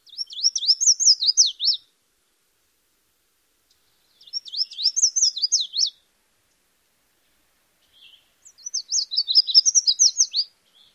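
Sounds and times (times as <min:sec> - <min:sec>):
red-faced warbler singing: 0:00.0 - 0:02.0, 0:03.7 - 0:06.1, 0:07.8 - 0:10.9.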